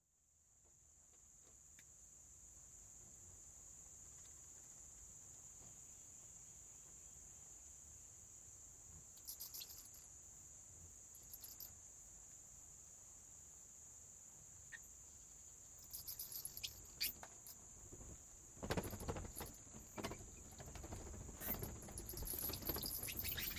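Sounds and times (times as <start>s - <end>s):
bat wings flapping in a cave: 16.5s - 23.5s.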